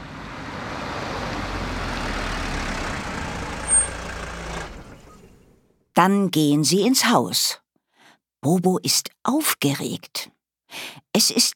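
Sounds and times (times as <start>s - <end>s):
car engine rumbling as the vehicle rolls to a stop: 0.0s - 5.8s
car brakes squeaking: 0.2s - 5.8s
speech: 6.0s - 7.6s, 8.4s - 11.5s.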